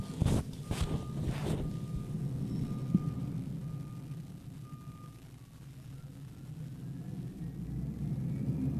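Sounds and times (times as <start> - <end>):
garbage truck reversing alarm beeping: 0.0 - 6.5
low garbage truck engine rumble: 0.0 - 8.7.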